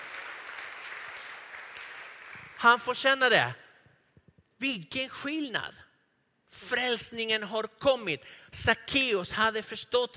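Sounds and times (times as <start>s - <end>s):
room full of people clapping: 0.0s - 3.4s
speech: 2.6s - 3.6s, 4.6s - 5.9s, 6.5s - 10.1s.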